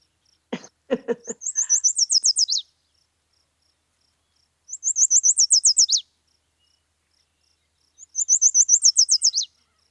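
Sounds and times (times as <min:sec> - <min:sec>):
yellow warbler singing its sweet whistled phrase: 0:01.2 - 0:02.7, 0:04.2 - 0:09.8.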